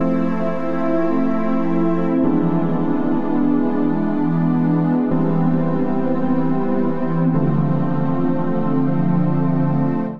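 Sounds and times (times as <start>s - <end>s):
tonal synth pad chords in C major: 0.0s - 10.1s.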